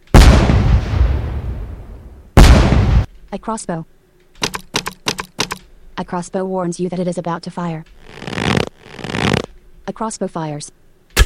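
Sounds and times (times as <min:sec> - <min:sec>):
video game fireball explosion striking the player: 0:00.1 - 0:03.1
speech: 0:03.3 - 0:04.5, 0:06.0 - 0:08.6, 0:09.9 - 0:11.2.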